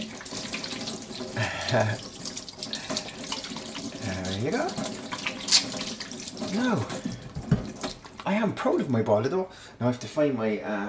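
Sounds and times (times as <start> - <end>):
hands being washed under a running tap: 0.0 - 8.4
tap water running into a sink: 0.0 - 8.4
speech: 1.4 - 2.1, 4.1 - 5.0, 6.5 - 7.1, 8.2 - 10.8.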